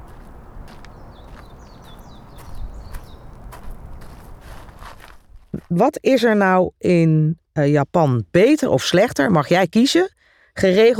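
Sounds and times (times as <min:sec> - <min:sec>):
flowing river water: 0:00.0 - 0:04.6
small birds chirping: 0:00.0 - 0:04.8
soft footsteps crunching at a walking pace: 0:00.0 - 0:05.8
speech: 0:05.7 - 0:10.9.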